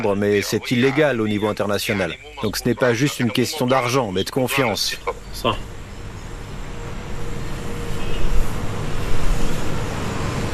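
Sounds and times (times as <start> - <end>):
speech: 0.0 - 5.7
city traffic engines and road noise in a city square: 0.0 - 10.5.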